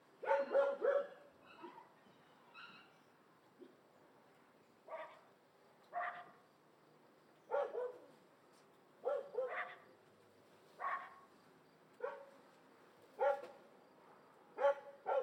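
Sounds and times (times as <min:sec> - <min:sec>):
distant dogs barking: 0:00.2 - 0:02.9, 0:06.0 - 0:06.4, 0:07.5 - 0:08.1, 0:09.0 - 0:09.8, 0:13.2 - 0:13.5, 0:14.6 - 0:15.2.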